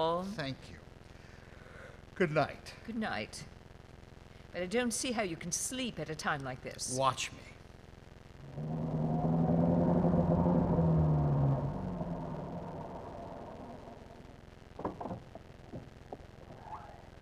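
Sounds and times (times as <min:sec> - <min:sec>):
speech: 0:00.0 - 0:00.9, 0:02.2 - 0:03.6, 0:04.5 - 0:07.6
car engine humming: 0:08.4 - 0:16.4
sharp clicks and knocks: 0:14.8 - 0:16.3.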